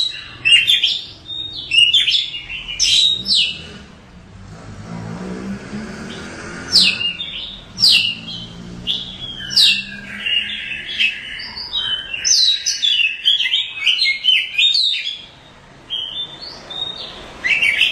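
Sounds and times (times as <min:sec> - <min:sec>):
oriental magpie-robin song with downslurred whistles: 0:00.0 - 0:03.7, 0:06.7 - 0:17.9
low rumbling background: 0:02.4 - 0:10.4.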